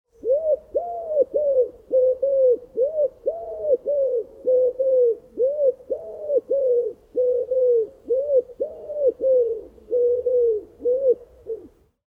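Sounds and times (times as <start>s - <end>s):
wood pigeon calling: 0.1s - 11.8s.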